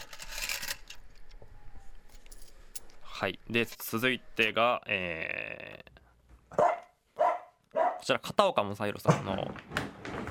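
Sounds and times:
coins from changing money jingling: 2.1 - 3.0
speech: 3.2 - 6.8, 8.0 - 9.8.

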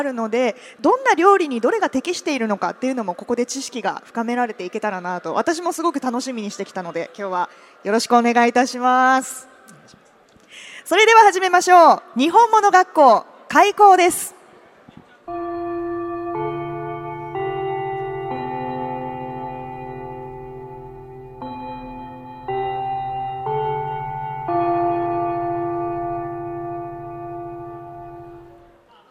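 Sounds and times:
speech: 0.0 - 9.5, 10.9 - 14.4
classic school bell chime melody: 15.3 - 28.8.

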